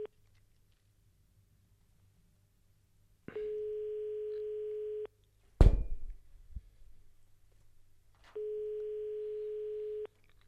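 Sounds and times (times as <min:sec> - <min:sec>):
telephone ring-back tone on a call during a radio call-in show: 0:03.4 - 0:05.1, 0:08.4 - 0:10.1.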